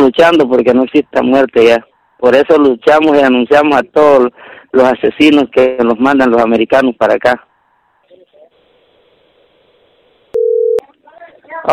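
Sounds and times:
speech: 0.0 - 7.5
telephone beep after a dropped call: 10.3 - 10.8.

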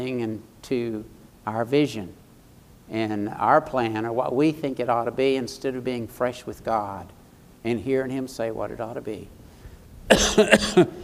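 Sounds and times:
speech: 0.0 - 2.2, 2.9 - 9.4, 10.1 - 11.0
person coughing during a sermon: 10.1 - 11.0.

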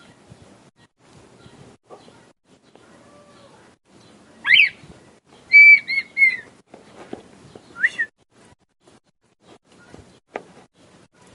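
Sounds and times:
male red-winged tinamou singing to the female: 4.4 - 4.8, 5.5 - 6.5, 7.8 - 8.1.

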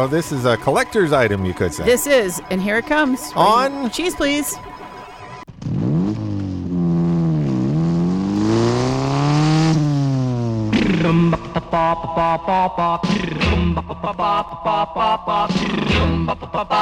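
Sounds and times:
speech: 0.0 - 4.7, 11.7 - 16.8
motorcycle engine revving with throttle blips: 5.1 - 11.8.

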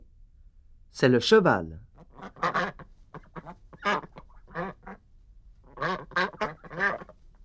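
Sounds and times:
speech: 1.0 - 2.4
duck quacking: 2.0 - 5.0, 5.7 - 7.2.

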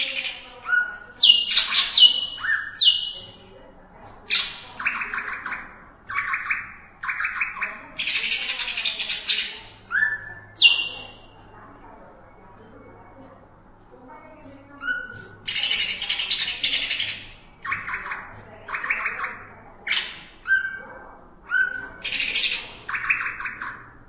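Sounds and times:
greater green leafbird song: 0.0 - 3.4, 4.3 - 11.4, 14.8 - 20.8, 21.5 - 24.0.

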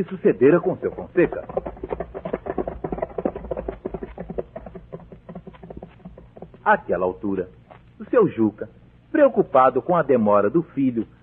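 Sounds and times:
speech: 0.0 - 2.0, 6.7 - 11.2
horse galloping along a road: 0.0 - 7.4.

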